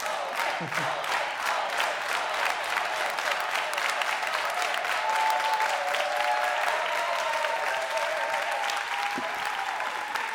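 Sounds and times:
audience applause: 0.0s - 10.3s
laughter: 0.4s - 1.2s
speech: 0.6s - 1.2s
faint whoops or voices: 5.0s - 10.3s.

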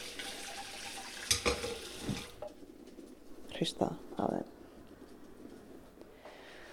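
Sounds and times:
tap water running into a sink: 0.0s - 2.4s
speech: 3.6s - 4.6s.

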